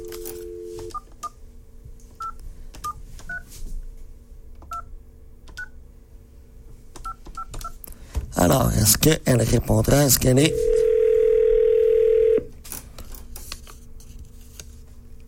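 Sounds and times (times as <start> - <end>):
telephone keypad tones: 0.0 - 1.0, 10.5 - 12.5
low hum: 0.0 - 15.2
speech: 8.5 - 10.8.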